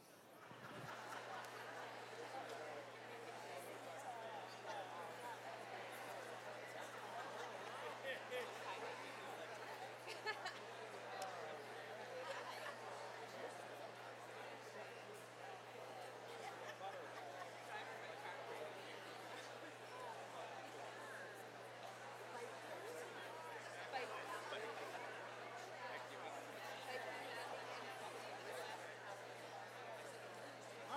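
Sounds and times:
audience chatting in pairs in auditorium: 0:00.0 - 0:30.9
laughter: 0:00.4 - 0:02.6, 0:04.2 - 0:14.7, 0:16.0 - 0:19.6.

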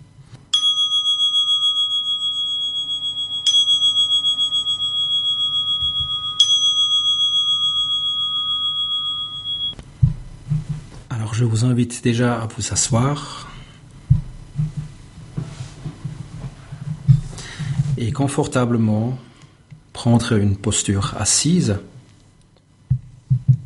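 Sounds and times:
bell struck with clear metallic tone: 0:00.6 - 0:09.8
faint low rumble: 0:07.7 - 0:11.7, 0:12.8 - 0:18.0
speech: 0:11.4 - 0:13.6, 0:18.1 - 0:19.3, 0:20.0 - 0:22.0.

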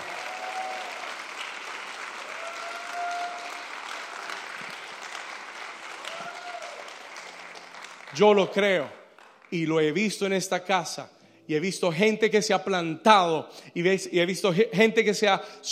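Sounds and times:
audience applauding loudly: 0:00.0 - 0:10.0
speech: 0:08.2 - 0:15.7.

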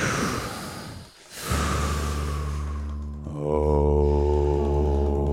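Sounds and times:
deep breath: 0:00.0 - 0:03.2, 0:04.0 - 0:05.2.

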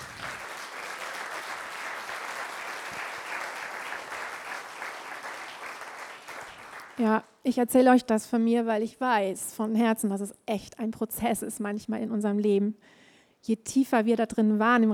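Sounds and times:
crowd applauding: 0:00.0 - 0:07.0
speech: 0:07.0 - 0:14.9.

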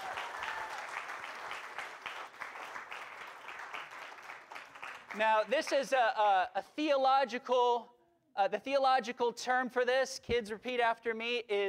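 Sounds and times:
crowd applauding: 0:00.0 - 0:05.5
speech: 0:05.2 - 0:11.6.

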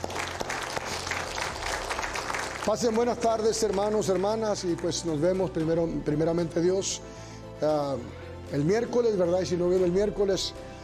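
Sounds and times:
church congregation applauding: 0:00.0 - 0:06.4
speech: 0:02.6 - 0:10.7.

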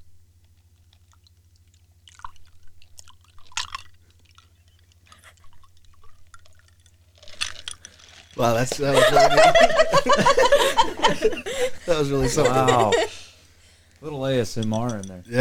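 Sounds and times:
steady low hum: 0:00.0 - 0:15.3
liquid poured, splashing and fizzing: 0:00.7 - 0:08.6
speech: 0:08.4 - 0:13.2, 0:14.0 - 0:15.3
laughter: 0:08.4 - 0:13.4.

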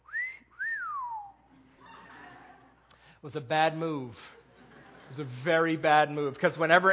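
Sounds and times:
person whistling a two-part cockatiel call: 0:00.0 - 0:01.4
laughter: 0:01.5 - 0:02.9, 0:04.2 - 0:06.4
speech: 0:03.2 - 0:04.4, 0:05.1 - 0:06.9.

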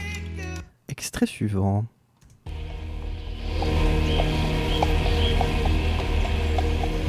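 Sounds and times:
speech: 0:01.0 - 0:02.0
continuous low rumble: 0:02.5 - 0:07.0
horse hooves clopping: 0:02.5 - 0:07.0.

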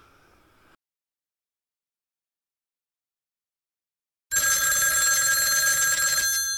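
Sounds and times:
old-style telephone bell ringing: 0:04.3 - 0:06.5.

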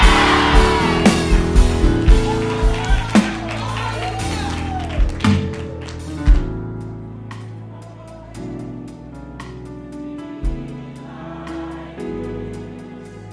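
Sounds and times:
audience screaming and shouting: 0:00.0 - 0:05.8
whoops and yells: 0:02.1 - 0:05.3.

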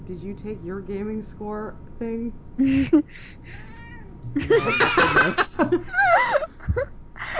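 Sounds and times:
speech: 0:00.1 - 0:07.3
people chuckling: 0:02.6 - 0:03.2, 0:04.3 - 0:06.9
cat meowing with a long wavering meow: 0:03.6 - 0:04.2
people murmuring: 0:04.2 - 0:05.8.

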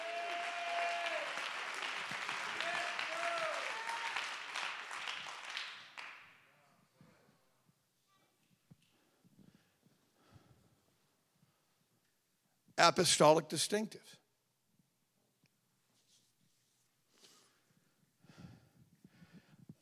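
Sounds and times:
church audience applause: 0:00.0 - 0:06.3
speech: 0:12.8 - 0:14.2.

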